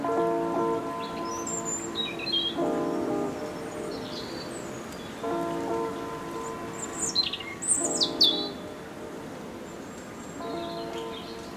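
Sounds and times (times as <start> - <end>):
birds singing in chirps and trills: 0.9 - 8.9, 9.6 - 11.5.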